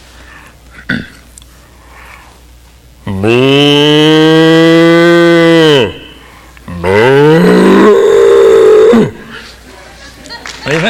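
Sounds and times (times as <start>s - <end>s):
person imitating a cow with a long sustained moo: 3.0s - 9.4s.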